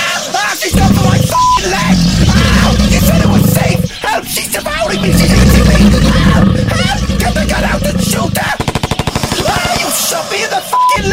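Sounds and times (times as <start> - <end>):
noisy commotion: 0.6 - 10.3
automatic gunfire: 8.6 - 10.2.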